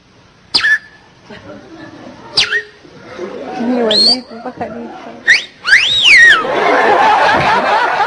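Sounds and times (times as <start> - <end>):
person whistling short chirpy sliding bird-like notes: 0.5 - 1.0, 2.4 - 2.8, 5.3 - 6.4
laughter: 1.2 - 4.0, 6.3 - 8.0.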